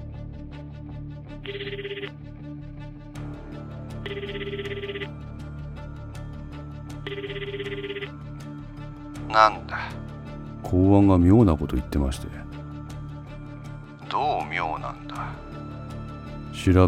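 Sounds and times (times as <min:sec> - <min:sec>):
telephone ringing on the line during an outgoing call: 0:01.4 - 0:02.2, 0:04.0 - 0:05.5, 0:06.9 - 0:08.6
speech: 0:01.5 - 0:02.3, 0:09.3 - 0:09.8, 0:10.7 - 0:12.5, 0:16.6 - 0:16.8.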